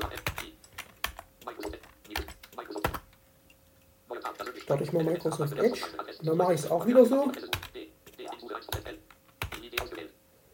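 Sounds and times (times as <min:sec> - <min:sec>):
typing on a computer keyboard: 0:00.0 - 0:03.1, 0:07.4 - 0:07.8, 0:08.7 - 0:10.0
speech: 0:04.7 - 0:07.6.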